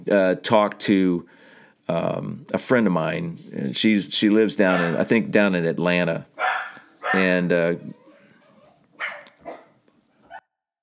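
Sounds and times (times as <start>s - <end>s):
speech: 0.0s - 8.0s
dog yipping and whining indoors: 4.7s - 5.0s, 6.4s - 10.4s
dog barking indoors: 4.7s - 5.1s, 6.4s - 7.4s, 8.1s - 10.4s.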